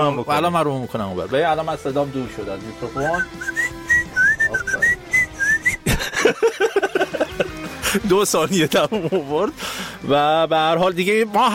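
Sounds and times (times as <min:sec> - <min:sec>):
speech: 0:00.0 - 0:03.7, 0:07.9 - 0:11.5
person whistling a wavering melodic tune: 0:03.0 - 0:05.9
laughter: 0:05.4 - 0:09.5.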